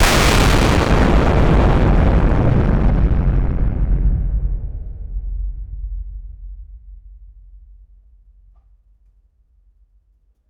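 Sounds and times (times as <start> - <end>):
nuclear explosion in war: 0.0 - 6.2.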